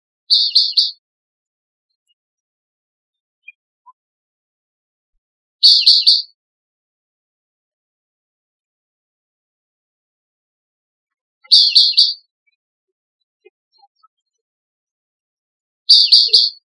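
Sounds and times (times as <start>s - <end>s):
Bewick's wren harsh triplet calls: 0.3s - 1.0s, 5.6s - 6.4s, 11.4s - 12.3s, 15.9s - 16.6s.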